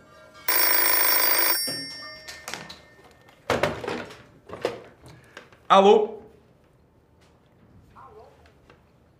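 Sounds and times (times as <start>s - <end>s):
telephone receiver being picked up with clunky handling thumps: 0.5s - 2.1s
telephone bell ringing: 0.5s - 3.1s
speech: 5.7s - 6.2s.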